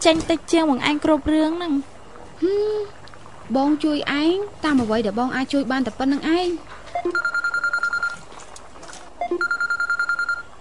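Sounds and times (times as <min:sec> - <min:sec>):
speech: 0:00.0 - 0:07.3
mobile phone ringing with pulsing electronic beeps: 0:07.0 - 0:08.2, 0:09.2 - 0:10.5.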